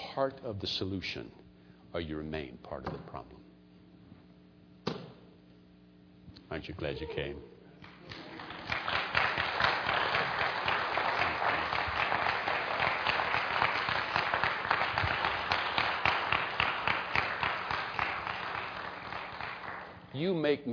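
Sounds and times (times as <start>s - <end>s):
speech: 0.2s - 3.5s, 6.5s - 7.5s, 20.2s - 20.7s
large audience applause: 8.0s - 20.1s.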